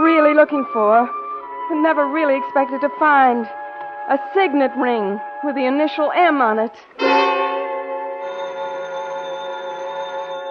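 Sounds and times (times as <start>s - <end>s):
speech: 0.4s - 7.2s
telephone bell on a private line ringing: 7.0s - 10.4s.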